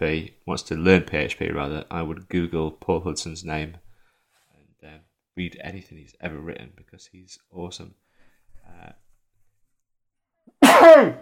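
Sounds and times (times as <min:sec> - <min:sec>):
speech: 0:00.0 - 0:03.8, 0:04.8 - 0:08.0, 0:08.6 - 0:09.0, 0:10.8 - 0:11.1
person sneezing: 0:10.6 - 0:11.1.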